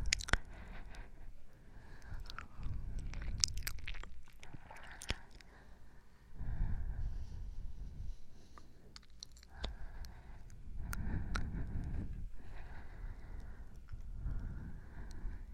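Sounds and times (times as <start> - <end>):
wet mouth crackles and clicks: 0.0 - 0.7, 2.0 - 5.5, 9.0 - 12.0
slow breathing: 0.0 - 3.6, 4.4 - 15.5.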